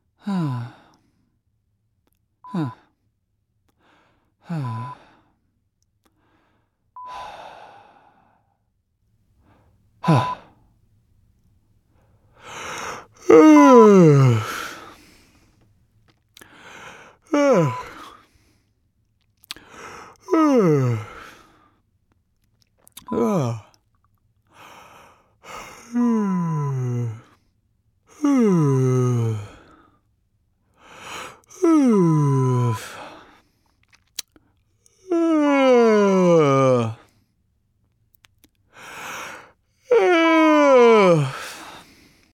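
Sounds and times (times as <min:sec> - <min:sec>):
person sighing: 0:00.2 - 0:00.9, 0:02.5 - 0:02.9, 0:04.4 - 0:05.2, 0:07.0 - 0:08.3, 0:10.0 - 0:10.6, 0:12.4 - 0:15.2, 0:16.4 - 0:18.2, 0:19.5 - 0:21.6, 0:23.0 - 0:23.8, 0:25.6 - 0:27.4, 0:28.1 - 0:29.9, 0:30.8 - 0:33.4, 0:35.0 - 0:37.1, 0:39.9 - 0:42.2.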